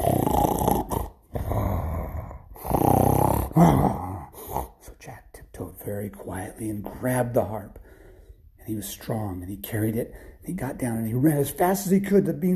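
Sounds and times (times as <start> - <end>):
voice imitating a sleeping giant's snoring: 0.0 - 5.0
speech: 3.6 - 4.0, 5.8 - 7.8, 8.7 - 12.5.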